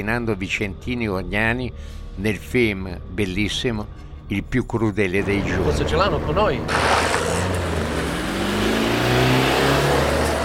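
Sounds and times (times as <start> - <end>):
speech: 0.0 - 7.2
car engine revving: 5.5 - 10.4.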